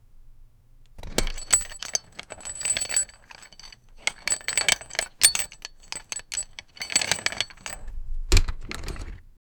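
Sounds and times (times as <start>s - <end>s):
light armor clinking: 1.0s - 7.9s
buckles jingling: 1.0s - 9.2s.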